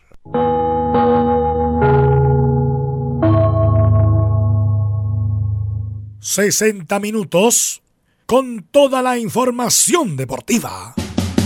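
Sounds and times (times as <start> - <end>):
gong struck as a radio network cue in Chile: 0.4 - 6.2
speech: 6.3 - 11.0.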